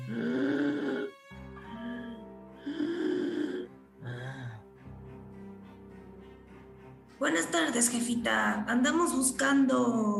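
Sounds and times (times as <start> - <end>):
labored wheezing breathing of a very old woman: 0.0 - 4.8
speech: 7.2 - 10.1.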